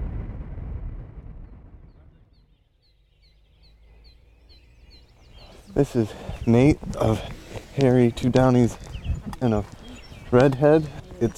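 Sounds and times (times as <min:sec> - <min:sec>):
low rumbling noise: 0:00.0 - 0:11.3
songbirds dawn chorus chirping: 0:01.9 - 0:11.3
speech: 0:05.8 - 0:08.8, 0:09.4 - 0:11.3.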